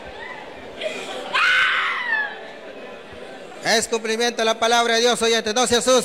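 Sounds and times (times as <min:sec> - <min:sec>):
steady murmur of noise: 0:00.0 - 0:06.0
woman screaming during church deliverance: 0:01.3 - 0:02.4
speech: 0:03.6 - 0:06.0.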